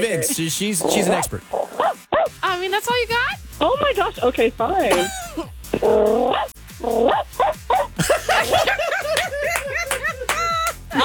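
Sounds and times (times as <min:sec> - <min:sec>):
speech: 0:00.0 - 0:07.3
laughter: 0:04.8 - 0:05.9, 0:07.7 - 0:11.0
person imitating a cranky Pomeranian dog's barks and yips: 0:04.9 - 0:07.9.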